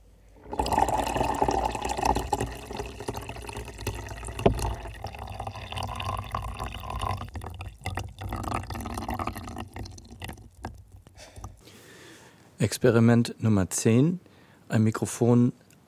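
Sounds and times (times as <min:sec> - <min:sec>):
water poured during an experiment: 0:00.4 - 0:11.7
speech: 0:12.6 - 0:15.6.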